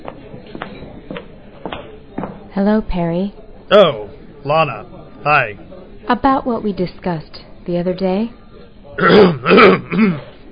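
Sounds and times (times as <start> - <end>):
speech: 2.6 - 8.4, 9.0 - 10.3
person coughing and clearing their throat: 9.0 - 10.4.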